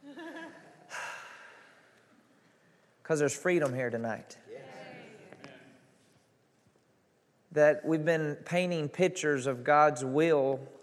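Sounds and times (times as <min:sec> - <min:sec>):
deep breath drawn during a church sermon: 0:00.9 - 0:01.9
speech: 0:03.1 - 0:04.4, 0:07.6 - 0:10.8.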